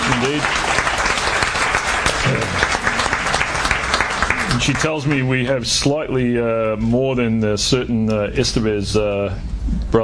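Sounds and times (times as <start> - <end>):
live studio audience applauding and cheering: 0.0 - 5.4
speech: 0.2 - 0.8, 4.7 - 10.0.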